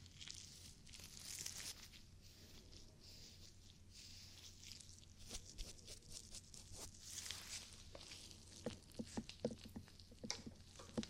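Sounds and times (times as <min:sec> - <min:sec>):
ear cleaning soft rubbing and scratching: 0:00.0 - 0:11.0
sharp crackles and taps: 0:07.9 - 0:11.0.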